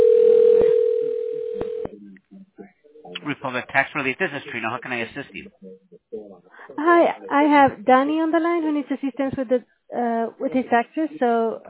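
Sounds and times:
steady low humming phone dial tone while placing a call: 0:00.0 - 0:01.9
sharp clicks on a phone line: 0:00.2 - 0:01.9
speech: 0:03.5 - 0:11.6.

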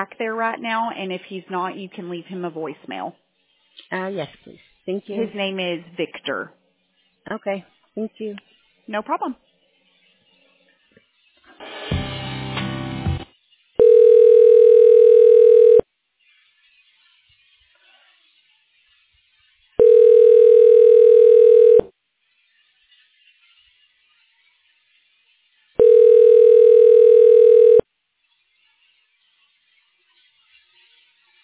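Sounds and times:
speech: 0:00.0 - 0:03.2, 0:03.9 - 0:06.6, 0:07.2 - 0:09.4
telephone line noise: 0:13.8 - 0:15.8, 0:19.8 - 0:21.9, 0:25.8 - 0:27.8.

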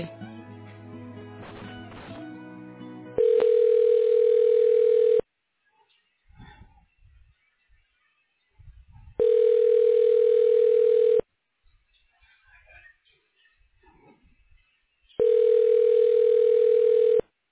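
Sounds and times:
telephone ringback tone during call transfer through a phone line: 0:03.2 - 0:05.2, 0:09.2 - 0:11.2, 0:15.2 - 0:17.2.

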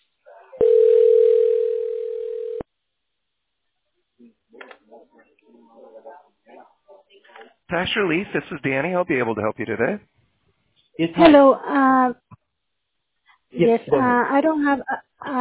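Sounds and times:
telephone dial tone while a call to a tax relief line is dialed: 0:00.6 - 0:02.6
speech: 0:07.7 - 0:10.1, 0:11.0 - 0:12.2, 0:13.6 - 0:15.3.

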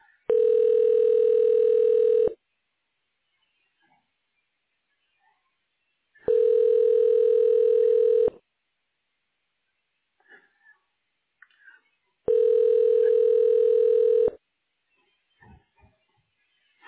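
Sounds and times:
telephone ringback tone while a call is transferred: 0:00.3 - 0:02.4, 0:06.3 - 0:08.3, 0:12.3 - 0:14.4.

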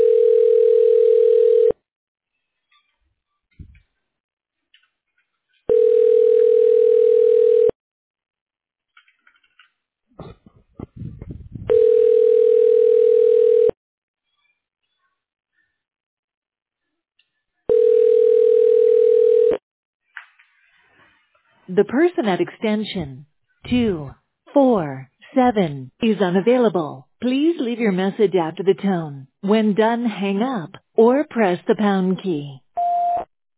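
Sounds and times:
telephone ringing back while a call is transferred: 0:00.0 - 0:01.8, 0:05.7 - 0:07.8, 0:11.7 - 0:13.8, 0:17.7 - 0:19.6
speech: 0:21.8 - 0:32.6.

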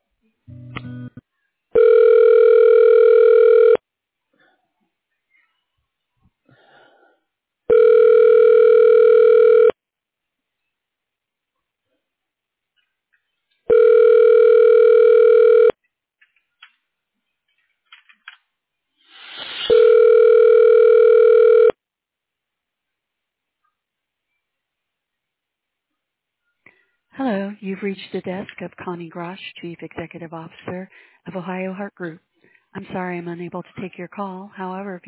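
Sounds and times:
telephone ringback tone while a call is transferred to voicemail: 0:01.8 - 0:03.8, 0:07.7 - 0:09.8, 0:13.7 - 0:15.8, 0:19.7 - 0:21.8
speech: 0:27.8 - 0:35.0.

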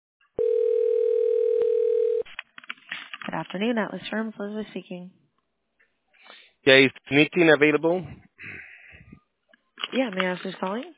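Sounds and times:
telephone dial tone: 0:00.4 - 0:02.3
speech: 0:03.3 - 0:05.2, 0:06.6 - 0:08.2, 0:09.9 - 0:10.9.

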